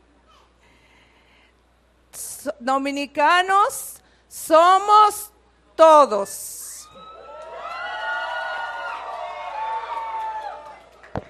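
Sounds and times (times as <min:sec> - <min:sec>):
speech: 0:02.5 - 0:03.9, 0:04.5 - 0:06.6
crowd of mostly young voices applauding and cheering: 0:06.8 - 0:11.2.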